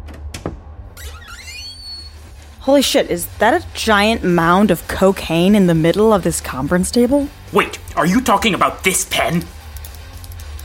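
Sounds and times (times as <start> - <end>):
meeting-room door hinge creaking: 0.0 - 2.3
speech: 2.6 - 9.6.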